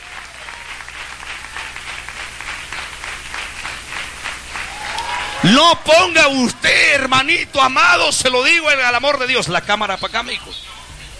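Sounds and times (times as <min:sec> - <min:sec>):
audience clapping hands: 0:00.0 - 0:07.9
speech: 0:05.4 - 0:10.7.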